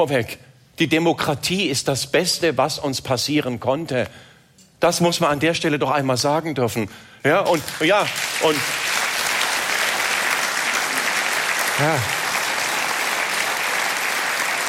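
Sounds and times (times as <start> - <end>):
speech: 0.0 - 9.0, 11.8 - 12.2
audience applause from a sizable crowd: 7.5 - 14.6.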